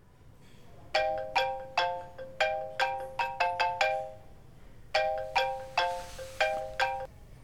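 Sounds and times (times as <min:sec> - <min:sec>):
mobile phone ringtone with bright chiming melody: 0:01.0 - 0:04.3, 0:05.0 - 0:07.1.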